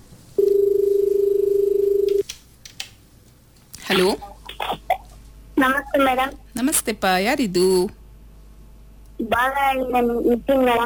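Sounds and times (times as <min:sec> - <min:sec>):
steady electronic tone of an incoming telephone call connecting: 0:00.4 - 0:02.2
speech: 0:05.6 - 0:08.0, 0:09.4 - 0:10.8.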